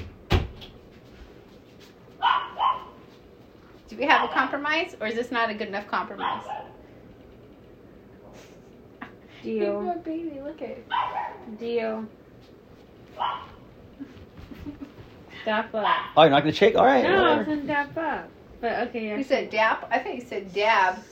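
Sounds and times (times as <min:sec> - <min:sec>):
female dog barking at a person holding another dog: 0:02.2 - 0:03.0, 0:04.1 - 0:04.6, 0:06.1 - 0:06.8, 0:10.9 - 0:11.5, 0:13.2 - 0:13.6, 0:15.8 - 0:16.2
speech: 0:03.9 - 0:06.8, 0:09.4 - 0:12.2, 0:13.2 - 0:13.5, 0:15.4 - 0:21.0.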